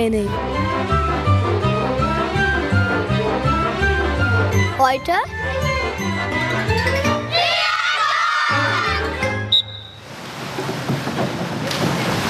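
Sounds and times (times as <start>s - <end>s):
speech: 0.0s - 1.2s, 4.8s - 7.0s
tonal sound at an indoor pool: 0.0s - 10.2s
girl jumping from a one-metre diving board into a pool: 10.0s - 12.2s.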